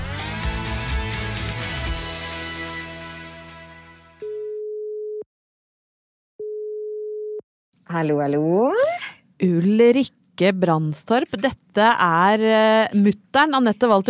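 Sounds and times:
music: 0:00.0 - 0:04.2
electronic telephone ringing tone while placing a call: 0:04.2 - 0:05.2, 0:06.4 - 0:07.4
speech: 0:07.9 - 0:14.0.

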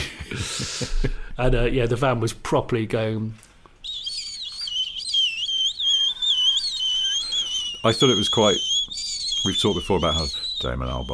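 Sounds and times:
speech: 0:01.4 - 0:03.4, 0:07.8 - 0:08.7, 0:09.4 - 0:11.1
human mouth whistling through teeth: 0:03.8 - 0:11.1.

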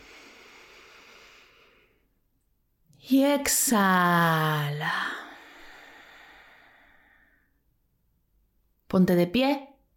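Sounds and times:
deep breath drawn in: 0:00.0 - 0:02.2, 0:04.8 - 0:07.6
speech: 0:03.1 - 0:05.2, 0:08.9 - 0:09.7.

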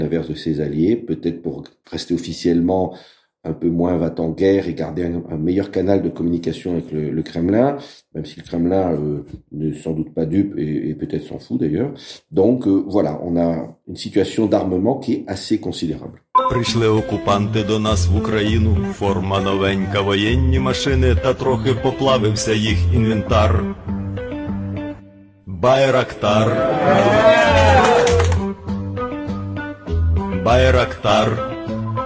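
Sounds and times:
speech: 0:00.0 - 0:24.0, 0:25.6 - 0:27.5, 0:30.4 - 0:31.5
person singing a song in Ukrainian: 0:16.4 - 0:23.8, 0:25.5 - 0:28.6, 0:30.4 - 0:32.0
full instrumental backing music: 0:16.4 - 0:25.4, 0:27.6 - 0:32.0.

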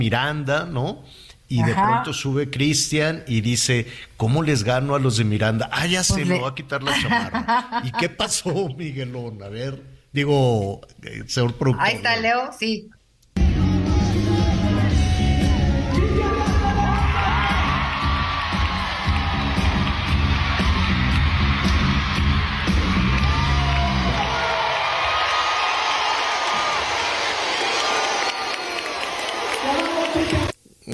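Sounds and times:
speech: 0:00.0 - 0:13.0
laughter: 0:06.8 - 0:09.0
concert crowd of thousands cheering and screaming: 0:13.8 - 0:30.5.

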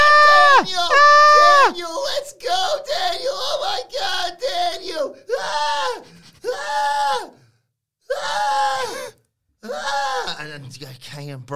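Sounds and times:
woman screaming in shrill bursts: 0:00.0 - 0:01.7, 0:05.3 - 0:07.4, 0:08.1 - 0:10.3
speech: 0:10.7 - 0:11.5.

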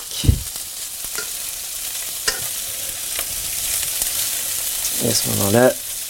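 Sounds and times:
fish frying in a pan: 0:00.0 - 0:06.0
speech: 0:05.0 - 0:05.9.

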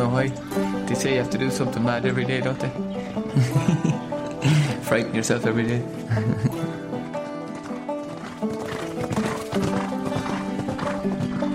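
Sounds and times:
speech: 0:00.1 - 0:06.8
laughter: 0:03.2 - 0:05.0, 0:06.0 - 0:06.9
horse hooves clopping: 0:06.5 - 0:11.5
horse whinnying: 0:07.6 - 0:11.5.

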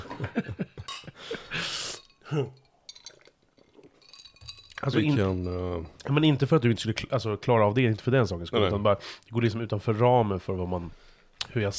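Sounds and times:
speech: 0:00.2 - 0:00.6, 0:02.3 - 0:02.6, 0:04.8 - 0:11.7
glasses clinking in a toast: 0:00.8 - 0:01.2, 0:01.8 - 0:05.8.

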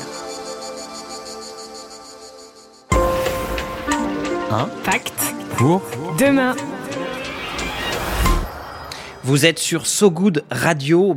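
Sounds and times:
cicadas chirping: 0:00.0 - 0:04.3, 0:06.3 - 0:10.2
speech: 0:04.5 - 0:06.7, 0:09.3 - 0:11.1.

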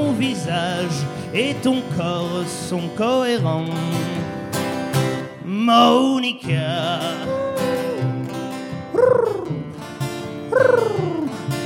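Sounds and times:
speech: 0:00.2 - 0:04.3, 0:05.6 - 0:07.5
human voice imitating a pigeon's cooing: 0:05.7 - 0:06.0, 0:07.3 - 0:08.2, 0:08.9 - 0:09.8, 0:10.5 - 0:11.5.

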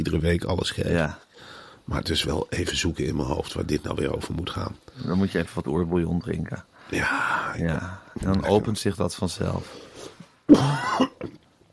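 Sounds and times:
speech: 0:00.1 - 0:11.4
quiet breathing: 0:01.2 - 0:01.9, 0:06.6 - 0:08.4, 0:09.4 - 0:10.4
person coughing: 0:10.5 - 0:11.4.

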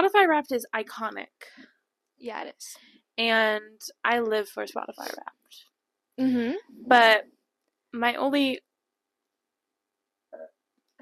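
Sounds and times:
speech: 0:00.0 - 0:08.7, 0:10.4 - 0:11.0
person burping: 0:06.2 - 0:06.6, 0:10.3 - 0:11.0.

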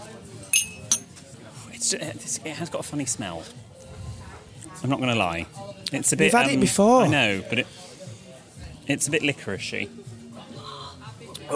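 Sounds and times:
drinking glasses clinking in a toast: 0:00.5 - 0:01.1
speech: 0:01.9 - 0:03.7, 0:04.8 - 0:07.8, 0:08.9 - 0:10.1.

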